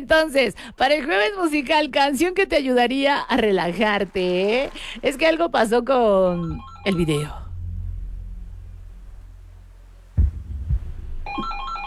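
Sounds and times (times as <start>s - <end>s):
speech: 0.0s - 7.4s
low hum: 5.0s - 11.8s
telephone with a warbling electronic ring: 6.3s - 7.5s, 11.3s - 11.8s
dull thumps: 6.5s - 11.6s.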